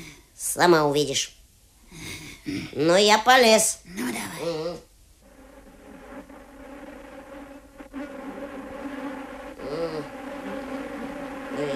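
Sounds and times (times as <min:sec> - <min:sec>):
speech: 0:00.4 - 0:01.4, 0:02.4 - 0:04.6
brief tonal warbles: 0:05.2 - 0:11.7
many bees buzzing: 0:05.2 - 0:11.7.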